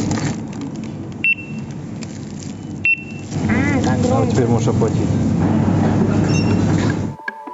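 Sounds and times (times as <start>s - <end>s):
steady hum of store noise: 0.0s - 7.2s
checkout barcode scanner beeps: 1.2s - 1.7s, 2.8s - 3.2s
speech: 4.0s - 5.7s.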